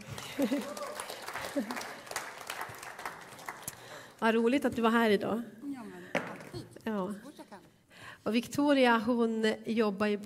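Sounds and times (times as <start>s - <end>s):
room full of people applauding: 0.0s - 4.1s
laughter: 0.2s - 2.0s
speech: 0.4s - 2.0s, 4.2s - 5.6s, 8.2s - 10.2s.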